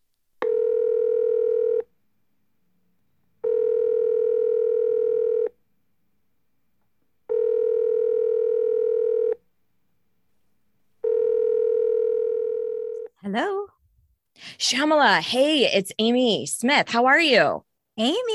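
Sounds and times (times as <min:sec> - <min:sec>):
telephone ringing tones on the line: 0:00.4 - 0:01.9, 0:03.4 - 0:05.6, 0:07.3 - 0:09.4, 0:11.0 - 0:13.1
speech: 0:14.6 - 0:18.3.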